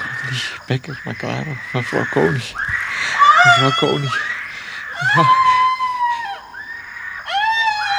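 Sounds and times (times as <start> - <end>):
speech: 0.3 - 2.8, 3.4 - 4.3, 5.0 - 5.6
laughter: 1.8 - 6.4
woman screaming: 3.2 - 4.2, 5.0 - 6.5, 7.3 - 7.9.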